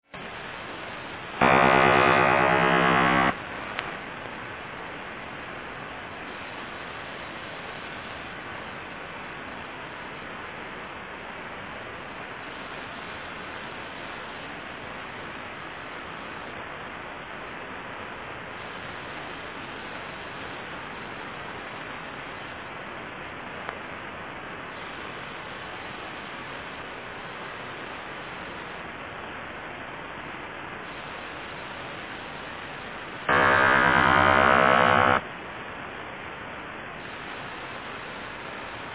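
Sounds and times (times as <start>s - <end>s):
ionospheric sounder or over-the-horizon radar signal: 1.4s - 3.4s, 33.3s - 35.2s.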